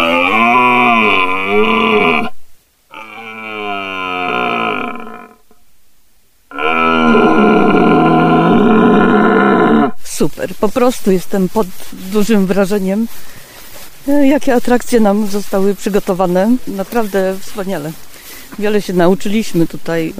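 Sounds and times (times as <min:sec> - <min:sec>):
man imitating the rutting roar of an old red deer stag: 0:00.0 - 0:05.4, 0:06.5 - 0:10.0
speech: 0:10.2 - 0:13.4, 0:14.0 - 0:20.1.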